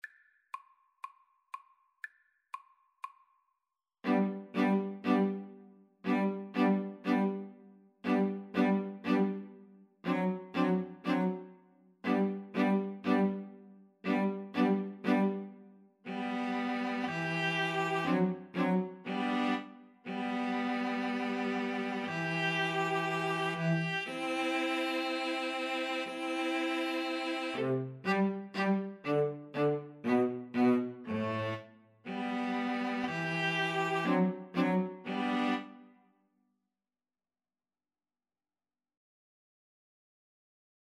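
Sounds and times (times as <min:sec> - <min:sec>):
string trio playing folk tune: 0:04.0 - 0:35.8.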